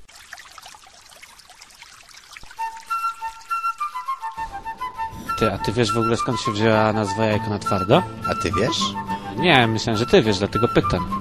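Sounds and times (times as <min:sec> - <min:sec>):
water running from a tap into a bathtub: 0:00.0 - 0:08.5
thin wavering whistle: 0:02.5 - 0:11.1
speech: 0:05.4 - 0:11.1.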